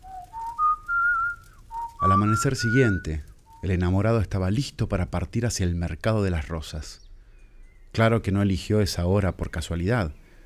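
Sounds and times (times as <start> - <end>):
tuneful whistling: 0.0 - 3.9
speech: 2.0 - 7.0, 7.9 - 10.2.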